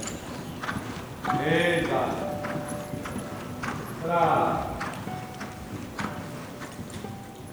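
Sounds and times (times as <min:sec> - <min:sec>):
horses' hooves clip-clopping under riders: 0:00.0 - 0:07.5
speech: 0:01.4 - 0:02.3, 0:04.1 - 0:04.7.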